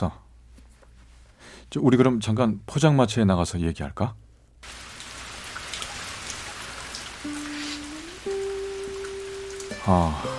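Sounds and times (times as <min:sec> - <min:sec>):
speech: 0:00.0 - 0:00.2, 0:01.7 - 0:04.8, 0:09.9 - 0:10.3
rain pattering: 0:04.6 - 0:10.3.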